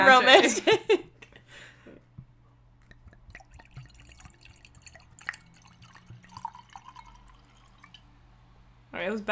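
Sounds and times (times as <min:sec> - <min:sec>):
speech: 0:00.0 - 0:01.1, 0:09.0 - 0:09.3
low steady hum: 0:00.0 - 0:09.3
wine pouring into a glass: 0:02.9 - 0:08.2.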